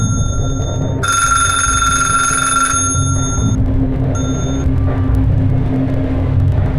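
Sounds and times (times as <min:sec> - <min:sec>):
telephone ringing: 0:00.0 - 0:03.6, 0:04.2 - 0:04.7
low rumbling background: 0:00.0 - 0:06.7.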